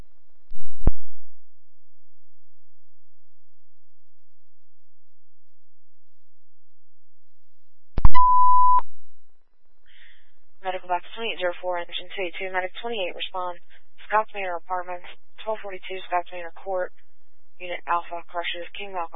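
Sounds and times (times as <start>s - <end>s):
smoke detector beeping during a service test: 8.0s - 8.8s
speech: 11.2s - 17.0s, 17.6s - 19.1s.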